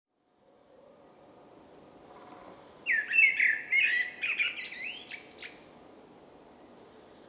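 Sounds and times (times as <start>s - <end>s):
common blackbird Turdus merula song: 2.8s - 5.7s.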